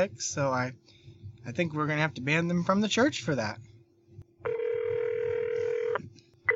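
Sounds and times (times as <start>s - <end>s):
speech: 0.0s - 3.7s
phone line electronic ringback tone: 4.4s - 6.5s.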